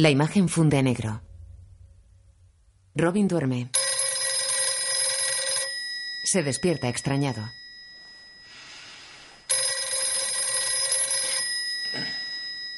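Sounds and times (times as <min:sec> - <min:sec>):
speech: 0:00.0 - 0:01.3, 0:03.0 - 0:03.8, 0:06.3 - 0:07.6
telephone ringing at night with electronic trill: 0:03.8 - 0:12.7.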